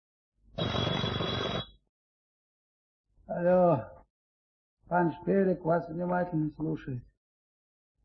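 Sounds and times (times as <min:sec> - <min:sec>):
telephone bell ringing: 0:00.6 - 0:01.8
speech: 0:03.3 - 0:04.0, 0:04.9 - 0:07.1.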